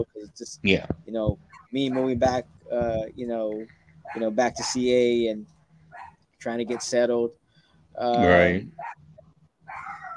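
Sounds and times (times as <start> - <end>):
speech: 0.0 - 5.6, 6.4 - 7.4, 8.0 - 9.0
dog barking: 1.5 - 2.1, 5.9 - 7.0, 8.8 - 9.0, 9.7 - 10.1.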